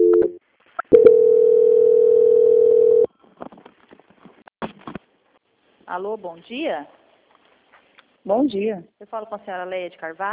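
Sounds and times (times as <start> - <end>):
telephone line tone while a call is being transferred: 0.0 - 3.1
speech: 5.9 - 7.0, 8.2 - 10.3.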